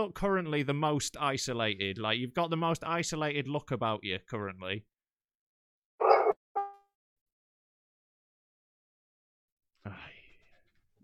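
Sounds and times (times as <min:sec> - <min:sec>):
speech: 0:00.0 - 0:04.9
neighbour's dog barking and yelping: 0:06.0 - 0:06.8.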